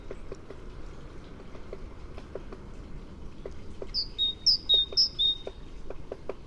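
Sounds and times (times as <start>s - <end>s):
low background noise: 0.0s - 6.4s
soft ticking clicks: 0.0s - 6.4s
great tit song: 3.8s - 5.6s.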